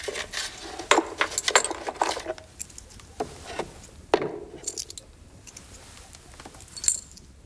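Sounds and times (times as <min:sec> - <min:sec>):
coins clinking in a cash box: 0:00.0 - 0:02.9, 0:04.3 - 0:05.7, 0:06.7 - 0:07.3.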